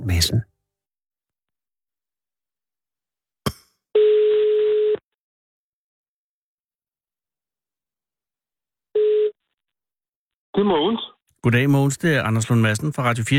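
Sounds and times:
speech: 0:00.0 - 0:00.5, 0:10.6 - 0:13.3
ringback tone of an outgoing telephone call: 0:04.0 - 0:05.0, 0:09.0 - 0:09.4.

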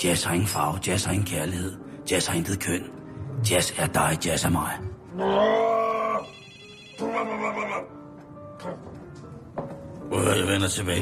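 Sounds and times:
speech: 0:00.0 - 0:05.8, 0:08.6 - 0:09.0, 0:10.1 - 0:11.0
telephone ringing: 0:06.2 - 0:07.1.

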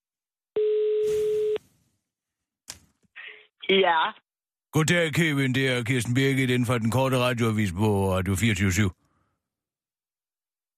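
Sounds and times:
telephone call tone as a call is placed: 0:00.6 - 0:01.6
speech: 0:03.7 - 0:09.0.

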